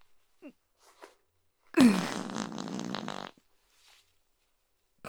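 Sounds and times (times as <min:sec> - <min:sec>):
fart: 0:01.8 - 0:03.4.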